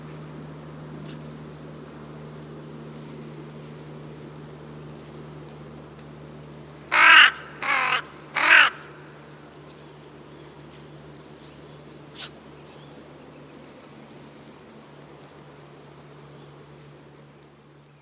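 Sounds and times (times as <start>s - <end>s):
low hum: 0.0s - 18.0s
crow cawing: 6.9s - 9.1s.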